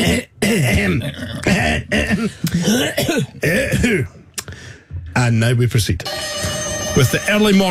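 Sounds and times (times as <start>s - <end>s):
person clearing throat with gravelly rasps: 0.0s - 4.2s
speech: 0.0s - 4.2s, 5.2s - 7.6s.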